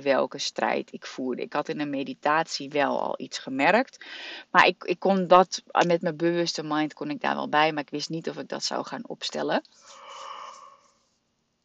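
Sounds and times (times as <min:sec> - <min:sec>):
speech: 0:00.0 - 0:10.3
person yawning: 0:09.9 - 0:10.9.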